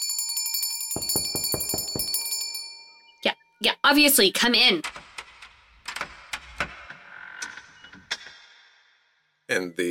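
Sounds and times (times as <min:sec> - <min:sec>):
bicycle-style bell ringing rapidly: 0:00.0 - 0:03.2
speech: 0:03.6 - 0:05.0, 0:09.5 - 0:09.9.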